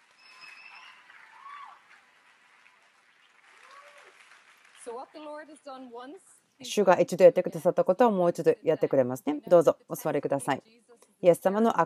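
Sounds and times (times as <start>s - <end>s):
crowd clapping: 0.0s - 6.0s
speech: 4.9s - 11.8s.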